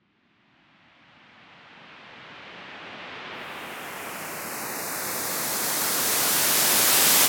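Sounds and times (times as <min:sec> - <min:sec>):
white noise riser: 0:02.6 - 0:07.2.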